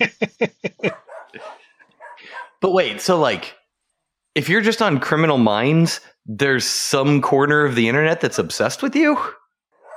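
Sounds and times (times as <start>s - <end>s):
speech: 0.0s - 0.5s, 2.6s - 3.6s, 4.4s - 9.4s
laughter: 0.0s - 1.9s
dog barking: 0.8s - 2.6s, 9.8s - 9.9s.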